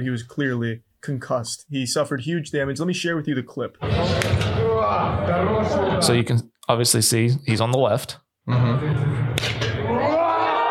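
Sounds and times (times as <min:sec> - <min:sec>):
speech: 0:00.0 - 0:09.6
hard slap to the face: 0:09.4 - 0:09.7.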